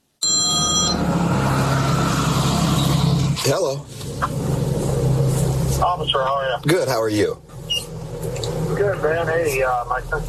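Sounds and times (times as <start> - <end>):
electronic phone ringing: 0.2 - 1.1
steady road or engine rumble: 0.6 - 10.2
speech: 3.5 - 4.6, 6.0 - 7.5, 8.8 - 10.2.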